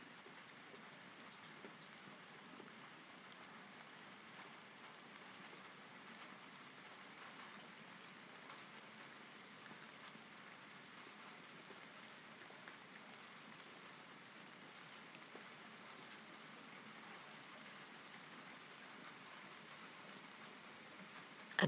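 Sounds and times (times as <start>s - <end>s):
steady rain falling: 0.0s - 21.6s.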